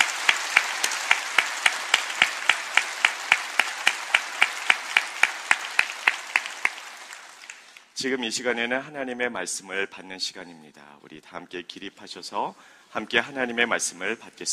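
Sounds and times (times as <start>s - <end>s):
congregation applauding: 0.0s - 8.0s
speech: 8.0s - 14.5s.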